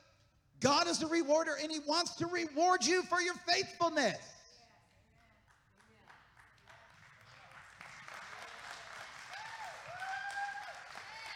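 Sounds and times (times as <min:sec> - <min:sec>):
speech: 0:00.6 - 0:04.4
light polite applause from a small crowd: 0:05.5 - 0:11.3.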